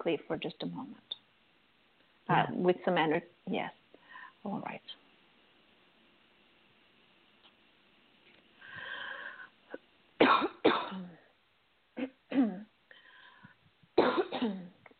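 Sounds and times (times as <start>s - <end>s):
speech: 0.0s - 1.2s, 2.3s - 3.8s, 4.4s - 5.0s
wheezy rasping breaths: 8.6s - 9.6s
harsh coughing: 10.2s - 11.2s
throat clearing: 12.0s - 12.7s.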